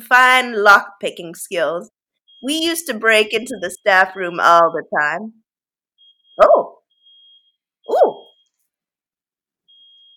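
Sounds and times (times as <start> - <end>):
speech: 0.1 - 5.4, 6.4 - 6.6
smoke alarm tone: 2.2 - 5.1, 6.0 - 8.6, 9.7 - 10.1.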